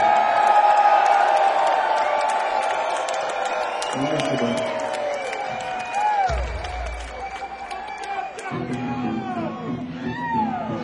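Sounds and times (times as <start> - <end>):
audience clapping at a live evening event: 0.0 - 9.3
audience whooping at a live evening event: 0.0 - 10.8
speech: 4.0 - 4.8.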